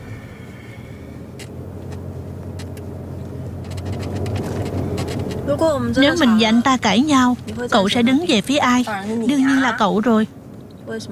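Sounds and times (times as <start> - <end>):
car being driven with low engine and road rumble: 0.0 - 11.1
speech: 5.6 - 11.1.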